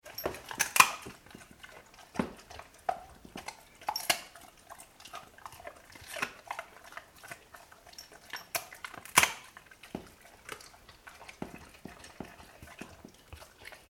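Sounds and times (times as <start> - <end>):
Labrador dog eating chicken bones: 0.0 - 13.9.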